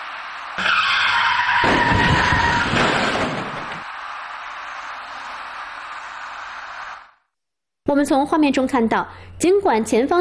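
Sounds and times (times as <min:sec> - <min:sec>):
box van crashing into a dark passenger car: 0:00.0 - 0:07.1
box van tires skidding: 0:00.0 - 0:07.1
speech: 0:08.0 - 0:10.2.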